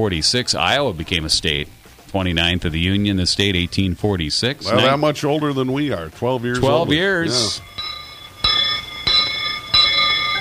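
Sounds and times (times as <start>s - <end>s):
speech: 0.0s - 7.8s
school bell clanging: 6.7s - 10.4s.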